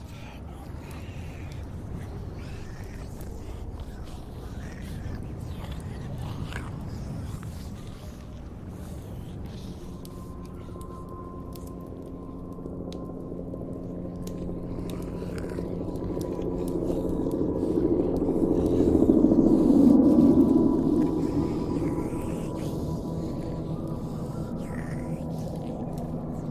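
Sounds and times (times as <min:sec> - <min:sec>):
faint wet clicks and scrapes: 0:00.0 - 0:26.5
low droning moans and groans: 0:00.0 - 0:26.5
steady rumbling background: 0:00.0 - 0:26.5.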